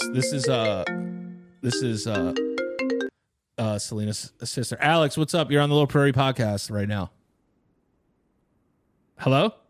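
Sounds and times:
phone ringtone for an incoming call: 0.0 - 3.1
speech: 0.1 - 2.6, 3.6 - 7.2, 9.2 - 9.6.

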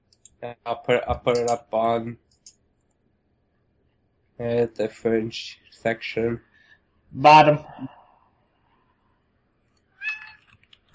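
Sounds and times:
speech: 0.4 - 2.2, 4.4 - 6.5, 7.1 - 8.0
cat meowing faintly: 10.0 - 10.4.

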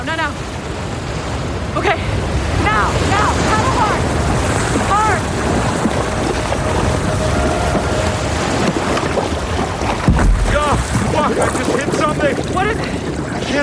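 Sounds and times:
heavy wind buffeting the microphone: 0.0 - 13.6
loud rush of surf and churning water: 0.0 - 13.6
speech: 1.8 - 2.2, 11.2 - 13.6
brief strained cries: 2.8 - 9.9.

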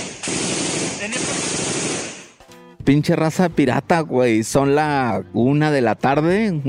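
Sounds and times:
heavy gunfire in rapid bursts: 0.0 - 2.4
speech: 1.0 - 1.4, 2.9 - 6.6.

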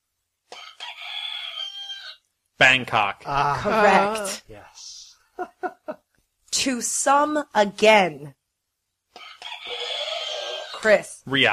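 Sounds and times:
rooster crowing: 0.5 - 2.2, 9.2 - 10.8
speech: 2.6 - 8.4, 10.8 - 11.5
laughter: 5.4 - 6.0.

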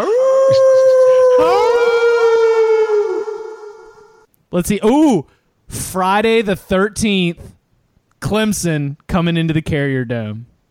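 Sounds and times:
wolf howl sound effect with reverberating echoes: 0.0 - 4.3
speech: 4.6 - 7.6, 8.2 - 10.5.

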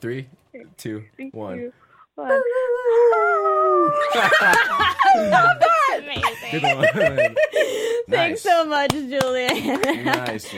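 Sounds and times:
speech: 0.0 - 10.5
people howling like wolves: 2.4 - 5.9
laughter: 3.9 - 8.0, 9.5 - 10.5.

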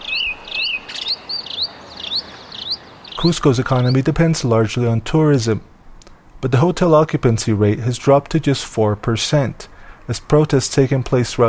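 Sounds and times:
birds chirping in a quiet central city square in Cusco: 0.0 - 6.2
speech: 3.2 - 5.7, 6.4 - 11.4.

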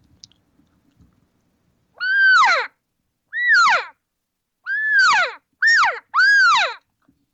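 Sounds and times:
quiet clicks: 0.0 - 1.3
call imitating cow elk chattering regathering calls: 2.0 - 4.0, 4.6 - 6.8.

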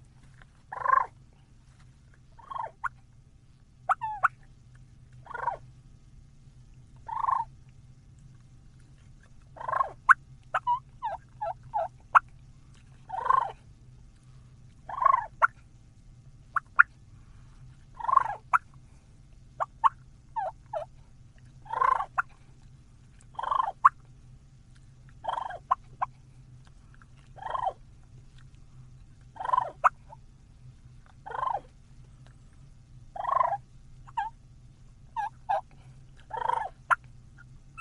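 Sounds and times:
turkey purrs imitated with a mouth call: 0.0 - 3.0, 3.8 - 5.7, 7.0 - 7.6, 8.8 - 13.7, 14.8 - 15.6, 16.5 - 17.0, 17.9 - 18.8, 19.6 - 22.5, 23.2 - 24.0, 25.1 - 28.6, 29.2 - 30.2, 31.0 - 32.4, 33.1 - 34.4, 35.1 - 37.8
low steady hum: 0.0 - 37.8
cluck-like notes from a turkey mouth call: 0.7 - 1.2, 5.2 - 5.6, 7.0 - 7.5, 9.6 - 12.3, 13.1 - 13.6, 14.9 - 15.6, 16.5 - 16.9, 18.0 - 18.7, 21.6 - 22.3, 23.3 - 24.0, 25.2 - 26.1, 29.4 - 30.0, 33.2 - 34.3, 35.2 - 37.0.

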